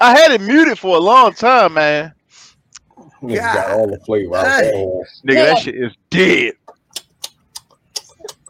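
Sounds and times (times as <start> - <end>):
speech: 0.0 - 2.2, 3.2 - 6.6
loud gum chewing: 6.7 - 8.4.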